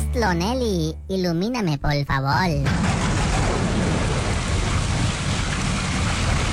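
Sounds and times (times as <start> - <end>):
speech: 0.1 - 3.0
deep thunder rumbling: 2.5 - 6.4
heavy rain: 2.7 - 6.4.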